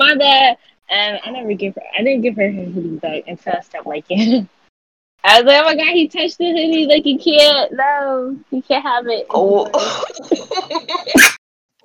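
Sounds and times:
speech: 0.1 - 4.6, 5.2 - 11.4
breathy voiced sounds: 9.3 - 10.6
loud sneeze: 11.2 - 11.4.

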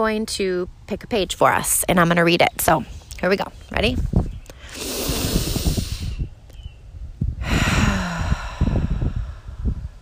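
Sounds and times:
speech: 0.0 - 4.2
deep breaths in and out during a guided breathing exercise: 4.5 - 6.3, 7.3 - 10.0.

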